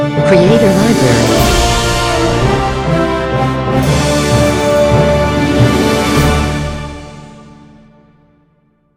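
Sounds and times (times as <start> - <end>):
orchestra playing a logo ident: 0.2 - 7.0.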